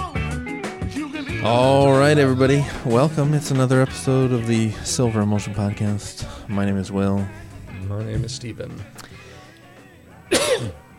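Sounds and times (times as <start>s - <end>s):
speech: 1.4s - 9.1s
person coughing: 10.3s - 10.8s.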